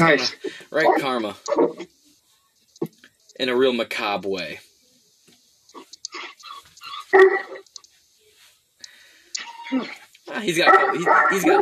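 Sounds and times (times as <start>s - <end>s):
speech: 0.0s - 1.9s, 3.4s - 4.7s, 7.1s - 7.7s, 9.7s - 11.6s
dog barking and yelping: 0.2s - 1.9s, 5.7s - 7.6s, 9.4s - 11.6s.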